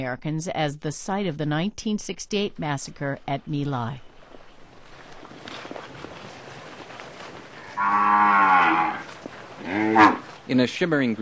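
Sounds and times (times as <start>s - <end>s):
speech: 0.0s - 4.1s, 7.8s - 11.1s
cow mooing in a rice paddy: 7.6s - 10.3s.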